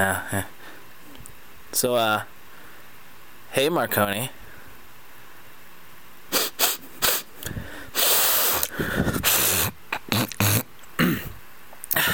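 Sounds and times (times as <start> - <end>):
speech: 0.0 - 0.6, 1.7 - 2.3, 3.5 - 4.4
snorting sniffles: 6.3 - 10.7
person sneezing: 6.3 - 12.1.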